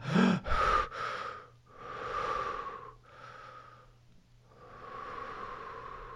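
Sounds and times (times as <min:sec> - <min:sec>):
voice imitating rapid gasping breaths under a cold shower: 0:00.0 - 0:06.1.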